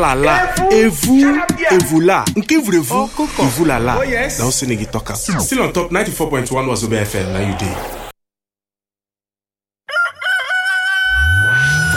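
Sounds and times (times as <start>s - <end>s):
speech: 0.0s - 8.0s
low whooshing sound: 2.9s - 8.1s
rooster crowing: 9.9s - 11.9s.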